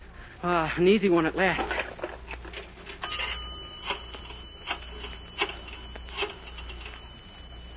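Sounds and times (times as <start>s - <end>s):
speech: 0.4s - 1.7s
low hum: 1.6s - 7.7s
telephone bell ringing: 3.0s - 7.7s.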